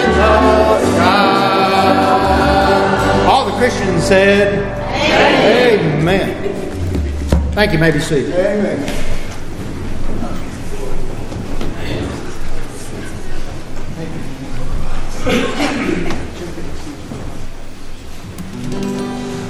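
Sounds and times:
people murmuring and talking: 0.0 - 19.4
speech: 3.6 - 6.6, 7.6 - 9.1, 15.2 - 16.2
train passing: 5.9 - 18.5.

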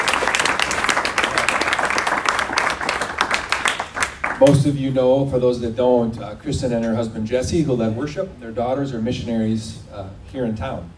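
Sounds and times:
room full of people applauding: 0.0 - 4.5
speech: 4.4 - 10.9.

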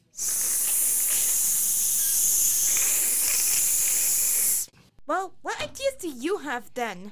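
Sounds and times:
loud steady hissing sizzle of the burning sun: 0.1 - 4.7
speech: 5.1 - 7.1.

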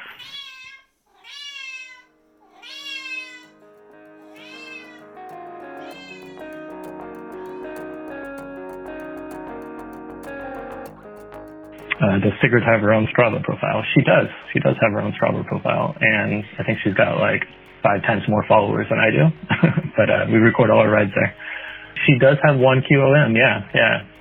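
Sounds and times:
cat meowing: 0.0 - 3.6, 4.2 - 5.2, 5.8 - 6.6
steady rhythmic mechanical or musical backdrop with tonal layers: 3.6 - 24.1
speech: 12.0 - 21.4, 22.1 - 24.1.

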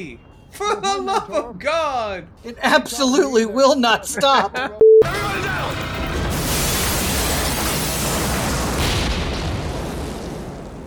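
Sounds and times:
speech: 0.0 - 5.8
bomb explosion in an action movie with rumble and debris: 6.1 - 10.8.

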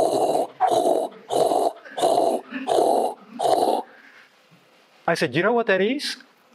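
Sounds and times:
voice imitating a pounding heartbeat and rushing blood in the ears: 0.0 - 3.9
speech: 5.1 - 6.3.

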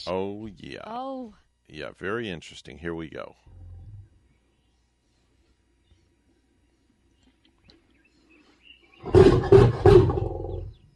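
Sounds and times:
speech: 0.0 - 3.6
lion roaring: 9.0 - 10.8.

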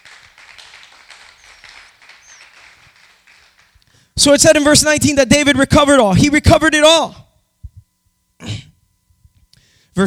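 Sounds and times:
church audience clapping in a morning service: 0.0 - 4.0
speech: 4.2 - 7.2.

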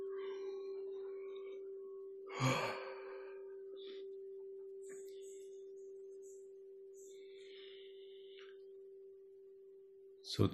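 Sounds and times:
steady low hum: 0.0 - 10.2
deliberate yawn as a mindful yawning exercise: 2.3 - 3.4
speech: 10.3 - 10.5.

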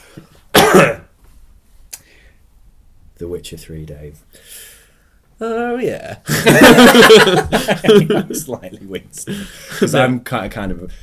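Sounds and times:
person coughing: 0.5 - 1.1
speech: 3.2 - 4.7, 5.4 - 11.0
laughter: 6.3 - 8.6.

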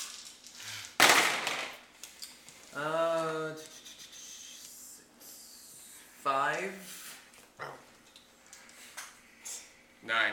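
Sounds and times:
dice rolled for defense in a game clattering onto a hard surface: 0.0 - 2.6
speech: 2.8 - 3.7.

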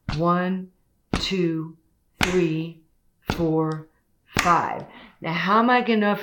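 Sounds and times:
speech: 0.2 - 6.2
back slaps between shoulder blades: 1.2 - 1.4, 2.2 - 2.6, 3.3 - 3.8, 4.4 - 4.9.

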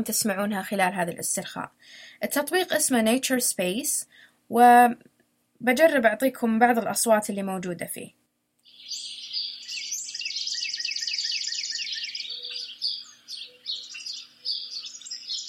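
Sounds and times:
speech: 0.0 - 8.2
sparrows chirping: 8.6 - 15.4.

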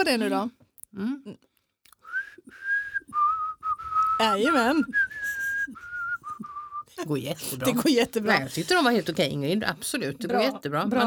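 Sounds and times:
speech: 0.0 - 1.5, 4.2 - 5.0, 7.0 - 11.0
person whistling national anthem while eating an almond biscuit: 2.0 - 6.9.

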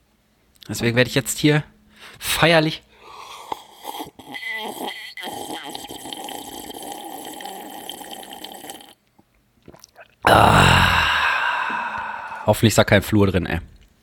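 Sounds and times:
speech: 0.7 - 2.9, 12.5 - 13.7
breathy exhale: 2.9 - 3.6, 10.3 - 12.7
wet throat sounds: 3.2 - 12.6
person gulping and swallowing water from a glass: 3.5 - 12.6.

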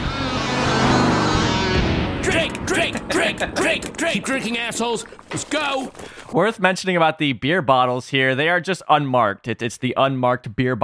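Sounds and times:
hot rod car engine roaring while driving past: 0.0 - 6.3
speech: 3.3 - 10.8.

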